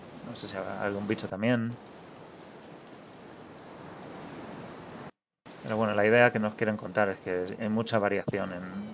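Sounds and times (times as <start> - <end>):
ocean surf washing against the shore: 0.0 - 6.4
speech: 0.4 - 1.9, 5.7 - 8.9.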